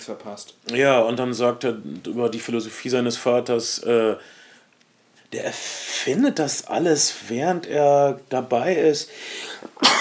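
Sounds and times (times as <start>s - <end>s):
speech: 0.0s - 4.4s, 5.3s - 9.9s
short soft intake of breath: 4.2s - 4.7s, 9.1s - 9.7s
person sneezing: 9.6s - 9.9s.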